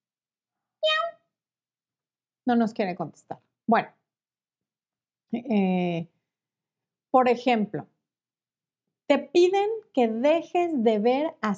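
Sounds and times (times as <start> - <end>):
person's voice imitating a cat meow: 0.8 - 1.2
speech: 2.5 - 4.0, 5.3 - 6.2, 7.1 - 7.9, 9.1 - 11.5.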